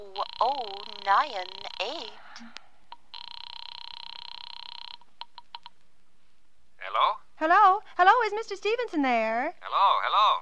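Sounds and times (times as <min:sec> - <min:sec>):
telephone line ringing with long electronic buzz: 0:00.0 - 0:02.2, 0:03.0 - 0:05.7
speech: 0:00.2 - 0:02.6, 0:06.8 - 0:10.4.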